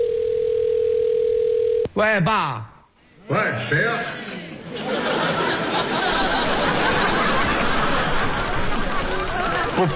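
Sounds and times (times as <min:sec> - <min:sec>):
telephone ringback tone: 0:00.0 - 0:01.9
speech: 0:02.0 - 0:02.7, 0:03.3 - 0:05.4, 0:09.8 - 0:09.9
laughter: 0:04.1 - 0:09.9.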